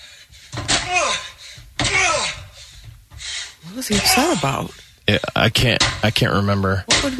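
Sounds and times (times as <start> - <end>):
pickaxe striking a door with splintering crack: 1.8 - 2.1
voices: 3.6 - 7.1
speech: 3.8 - 7.1.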